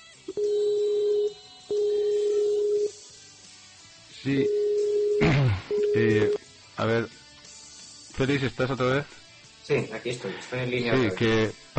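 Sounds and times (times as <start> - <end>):
mid-pitched electronic telephone beeps while redialing after a dropped call: 0.3 - 2.9, 4.4 - 6.4
speech: 4.2 - 4.6, 5.2 - 7.2, 8.2 - 11.7.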